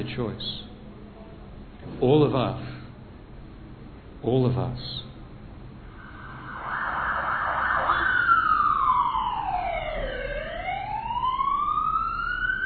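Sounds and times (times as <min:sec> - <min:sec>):
speech: 0:00.0 - 0:00.7, 0:01.8 - 0:02.8, 0:04.2 - 0:05.1
ambulance siren wailing as the vehicle passes: 0:05.9 - 0:12.6.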